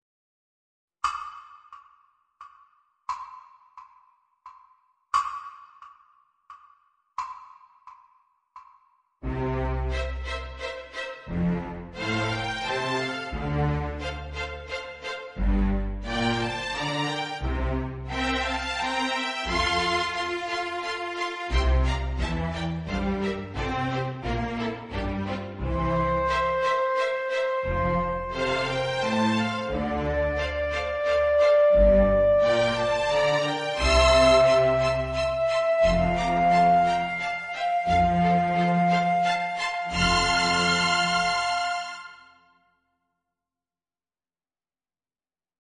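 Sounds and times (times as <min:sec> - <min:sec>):
viola accompaniment in third position: 0:09.2 - 0:42.3.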